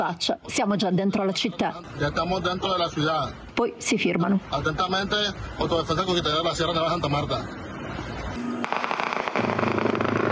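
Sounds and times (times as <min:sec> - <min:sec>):
speech: 0:00.0 - 0:08.0
gunshots: 0:08.6 - 0:10.3.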